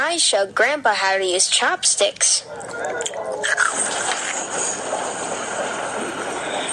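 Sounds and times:
speech: 0.1s - 3.8s
train running on rails: 4.4s - 6.7s.

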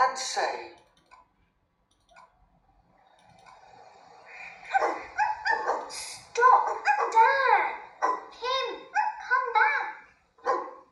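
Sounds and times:
speech: 0.2s - 0.9s
dogs barking and yipping: 4.7s - 7.3s, 7.9s - 8.3s, 8.9s - 9.3s, 10.4s - 10.9s.

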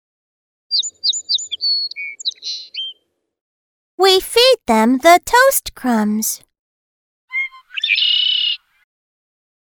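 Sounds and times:
single bird singing high chirps trills and whistles: 0.7s - 3.0s, 7.3s - 8.8s
speech: 4.0s - 6.5s.

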